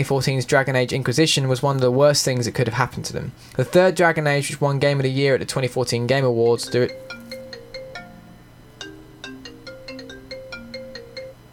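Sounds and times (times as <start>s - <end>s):
speech: 0.0s - 7.2s
phone's melodic ringtone for an incoming call: 6.5s - 11.5s.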